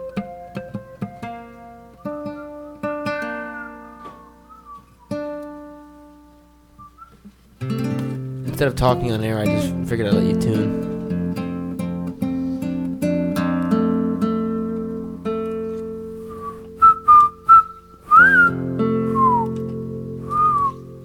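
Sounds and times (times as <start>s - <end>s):
sustained instrumental chords: 0.0s - 6.9s, 7.6s - 21.0s
person whistling a short melody: 2.0s - 5.8s, 6.8s - 7.3s, 16.2s - 19.6s, 20.2s - 20.9s
speech: 8.6s - 10.9s.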